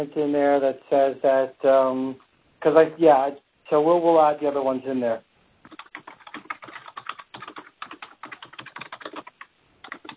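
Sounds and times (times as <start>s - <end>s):
speech: 0.0s - 5.3s
computer keyboard typing: 5.6s - 10.1s.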